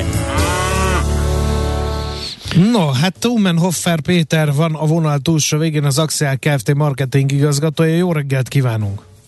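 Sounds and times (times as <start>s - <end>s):
cow mooing: 0.0s - 2.2s
speech: 2.7s - 9.1s.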